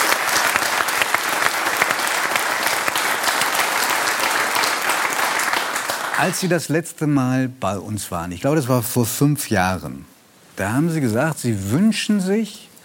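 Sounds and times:
audience applause: 0.0 - 6.5
speech: 6.2 - 12.7.

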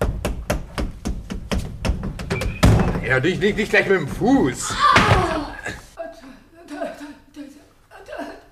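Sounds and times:
hollow knocking on back wall of wooden wardrobe panel: 0.0 - 3.1
speech: 3.1 - 5.2.

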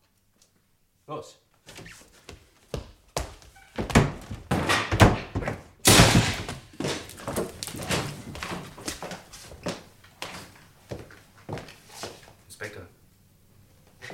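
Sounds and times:
speech: 1.1 - 2.1
door splintering crash as it gives way: 3.8 - 8.3.

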